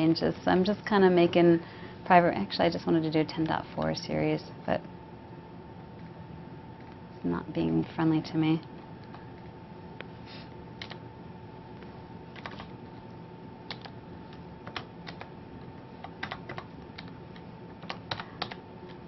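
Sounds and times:
speech: 0.0 - 4.9, 7.2 - 8.7
low steady hum: 0.0 - 19.0
computer keyboard typing: 10.8 - 11.0, 12.3 - 12.7, 13.7 - 19.0.

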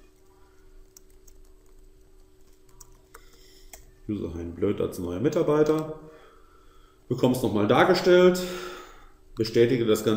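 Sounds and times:
computer keyboard typing a first and last name into an on-screen form: 0.0 - 3.9
steady low electrical hum: 0.0 - 10.1
speech: 4.1 - 6.1, 7.1 - 8.7, 9.4 - 10.1.

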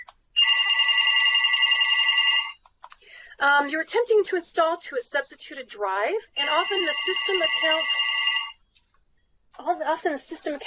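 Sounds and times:
telephone ringing with electronic trill: 0.0 - 2.6, 6.4 - 8.6
speech: 3.4 - 8.2, 9.6 - 10.6.

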